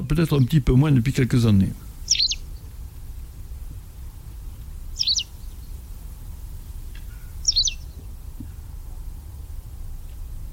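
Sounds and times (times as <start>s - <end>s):
low steady rumble: 0.0s - 10.5s
speech: 0.1s - 2.3s
white wagtail giving sharp high two-note calls: 1.7s - 3.0s, 3.9s - 5.9s, 6.6s - 8.8s.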